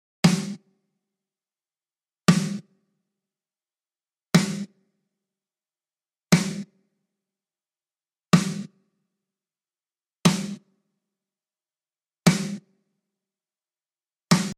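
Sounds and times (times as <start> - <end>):
clear drum kit: 0.2 - 0.6, 2.3 - 2.6, 4.4 - 4.7, 6.3 - 6.7, 8.3 - 8.8, 10.3 - 10.7, 12.3 - 12.7, 14.3 - 14.5.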